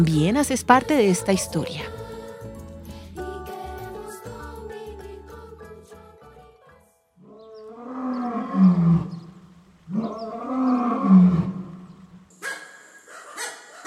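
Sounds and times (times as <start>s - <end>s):
speech: 0.0s - 2.0s
lion roaring: 7.2s - 12.2s.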